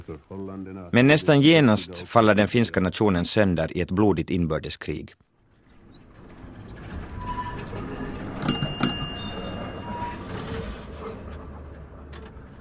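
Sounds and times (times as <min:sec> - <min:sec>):
speech: 0:00.1 - 0:05.2
ringing squeal: 0:05.7 - 0:11.3
tram rumbling along its tracks: 0:05.7 - 0:12.5
sharp metallic clanks: 0:07.7 - 0:11.0.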